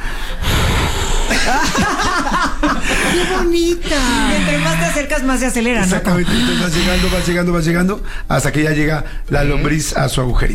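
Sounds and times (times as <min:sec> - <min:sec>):
voice imitating breathing during intimate lovemaking: 0:00.0 - 0:01.8, 0:02.8 - 0:05.1, 0:05.8 - 0:07.5
laughter: 0:01.3 - 0:04.6
speech: 0:01.4 - 0:10.5.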